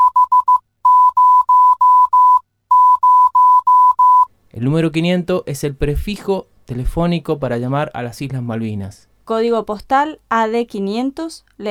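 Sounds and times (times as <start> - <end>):
Morse code beeps for the number 500: 0.0 - 4.3
speech: 4.6 - 11.6.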